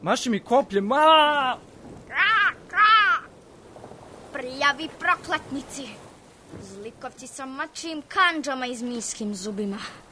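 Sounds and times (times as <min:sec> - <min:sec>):
speech: 0:00.0 - 0:01.7, 0:04.4 - 0:10.0
crow cawing: 0:02.0 - 0:03.4.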